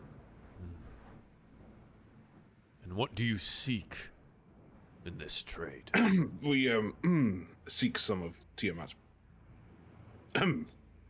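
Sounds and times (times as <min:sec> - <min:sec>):
speech: 0:02.9 - 0:04.1, 0:05.0 - 0:09.0, 0:10.3 - 0:10.8
gruff cough blended with a throat clear: 0:05.9 - 0:06.4, 0:07.0 - 0:07.4, 0:10.3 - 0:10.8.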